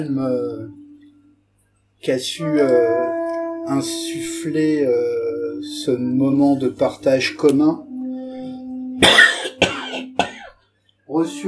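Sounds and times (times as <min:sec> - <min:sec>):
speech: 0:00.0 - 0:00.8, 0:02.0 - 0:07.9, 0:09.0 - 0:09.2, 0:11.2 - 0:11.4
faint steady tone humming: 0:00.0 - 0:10.5
harsh coughs: 0:09.0 - 0:10.6.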